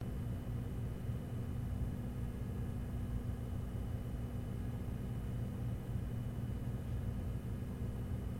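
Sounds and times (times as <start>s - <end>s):
computer fan: 0.0s - 8.3s.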